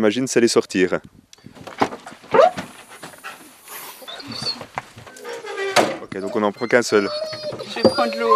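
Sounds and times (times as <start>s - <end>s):
speech: 0.0s - 1.2s, 6.2s - 8.3s
faint noise: 0.0s - 8.3s
canicross dog panting: 2.0s - 8.3s.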